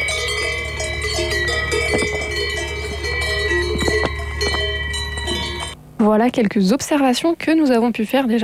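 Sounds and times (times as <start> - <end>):
cow bells clanking in an alpine pasture: 0.0 - 5.8
steady low outdoor hum: 0.0 - 8.4
speech: 6.0 - 8.4.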